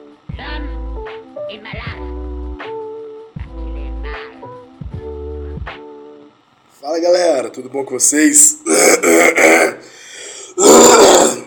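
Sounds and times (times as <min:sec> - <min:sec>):
speech: 0:01.5 - 0:02.2, 0:06.9 - 0:09.9
faint breathy hiss: 0:08.1 - 0:11.4
person clearing throat: 0:08.6 - 0:09.9, 0:10.6 - 0:11.4.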